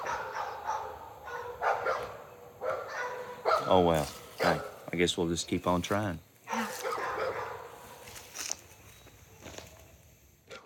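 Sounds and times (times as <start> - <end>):
dogs barking: 0.0 - 4.9, 6.4 - 7.9
faint outdoor noise: 0.0 - 10.6
speech: 3.7 - 6.3.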